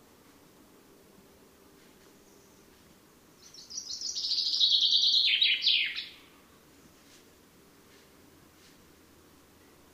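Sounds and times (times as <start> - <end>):
common chaffinch Fringilla coelebs song: 2.1 - 7.0.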